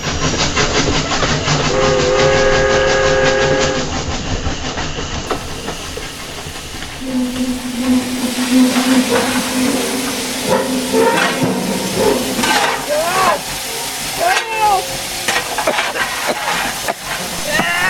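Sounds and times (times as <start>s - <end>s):
rumble of moving rail cars: 0.0s - 17.8s
steam locomotive chuffing and hissing on a tourist rail line in Colorado: 0.0s - 17.8s
steam locomotive whistle: 1.7s - 3.9s, 7.0s - 13.4s.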